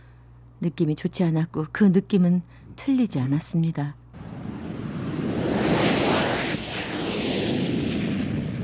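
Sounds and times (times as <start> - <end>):
speech: 0.6 - 4.0
airplane engine roaring in flight to Gangwon Province: 4.2 - 8.6
thin high whine: 4.2 - 8.6.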